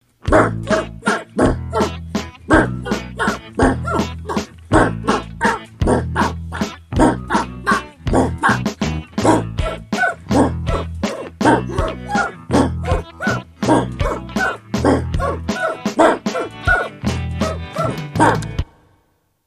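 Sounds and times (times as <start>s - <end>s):
oompah music: 0.3s - 18.8s.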